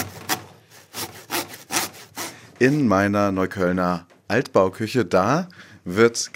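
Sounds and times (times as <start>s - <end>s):
large 40 cm wooden hand saw sawing a pumpkin in a kitchen: 0.0s - 2.9s
speech: 2.6s - 6.3s.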